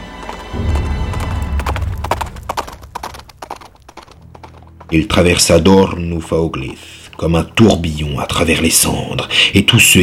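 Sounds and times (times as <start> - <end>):
horse hooves galloping: 0.0 - 6.8
speech: 4.9 - 10.0.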